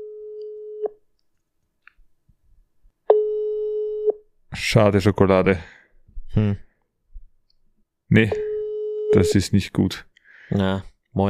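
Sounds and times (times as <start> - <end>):
telephone ringing tone over a speakerphone: 3.1 - 4.1, 8.3 - 9.5
speech: 4.6 - 6.6, 8.1 - 8.5, 9.1 - 11.2.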